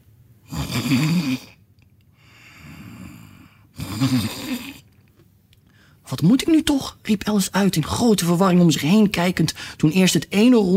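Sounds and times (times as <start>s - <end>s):
loud snoring: 0.4s - 1.6s, 2.5s - 4.8s
speech: 0.8s - 1.6s, 4.0s - 4.8s, 6.2s - 10.7s.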